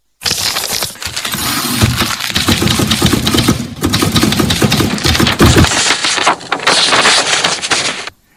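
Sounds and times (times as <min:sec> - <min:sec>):
typewriter keys clacking: 0:00.2 - 0:08.1.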